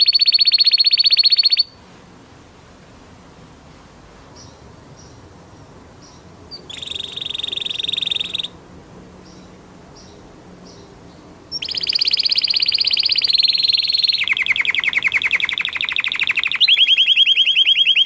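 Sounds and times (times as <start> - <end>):
orange canary trilling: 0.0 - 1.8, 6.5 - 8.6, 11.5 - 18.0.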